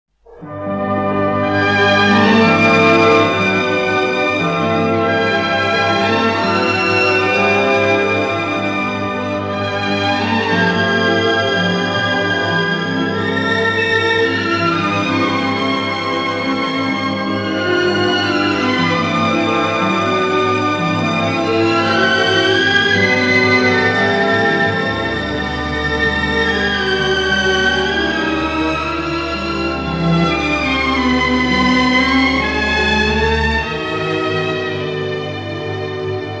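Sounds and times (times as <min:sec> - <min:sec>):
orchestra: 0:00.1 - 0:36.3.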